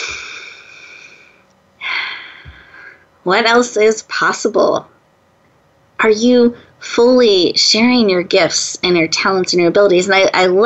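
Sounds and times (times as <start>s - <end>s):
breathy sound: 0.0s - 3.0s
speech: 3.2s - 4.9s, 6.0s - 10.6s.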